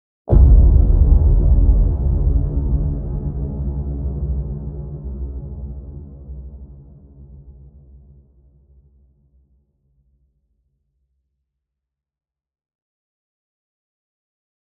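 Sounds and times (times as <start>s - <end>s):
deep hit: 0.3s - 6.9s.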